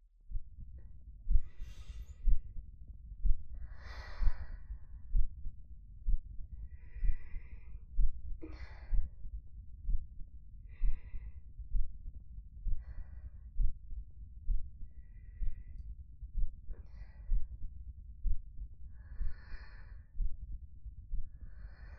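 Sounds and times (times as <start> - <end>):
heartbeat: 0.0 - 21.9
gentle breaths: 1.3 - 2.6, 3.2 - 5.5, 6.1 - 9.3, 9.9 - 12.0, 12.6 - 13.8, 14.5 - 20.4, 21.1 - 21.9.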